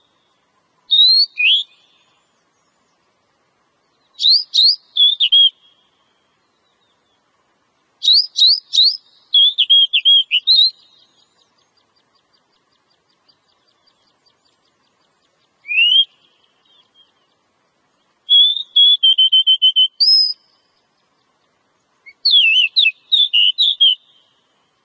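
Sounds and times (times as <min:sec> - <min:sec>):
female Oriental magpie-robin song of rising whistles and descending chirps: 0:00.8 - 0:02.7, 0:04.0 - 0:07.0, 0:08.0 - 0:12.4, 0:15.2 - 0:17.4, 0:18.3 - 0:20.8, 0:22.0 - 0:24.4.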